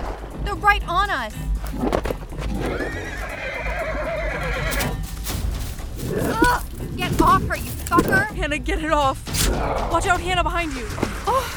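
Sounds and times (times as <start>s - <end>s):
speech: 0.6s - 3.4s, 6.1s - 11.5s
horse neighing: 2.6s - 4.7s
horse hooves clip-clopping: 4.7s - 8.2s.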